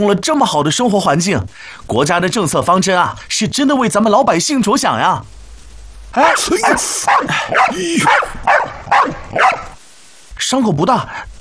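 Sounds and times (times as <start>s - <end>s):
speech: 0.0s - 5.4s, 6.1s - 9.5s, 10.4s - 11.3s
dog barking: 6.2s - 9.8s.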